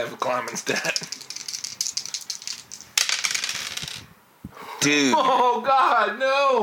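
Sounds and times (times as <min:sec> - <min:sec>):
speech: 0:00.0 - 0:01.2, 0:04.8 - 0:06.6
dice rolled during a tabletop role-playing game: 0:00.3 - 0:04.1.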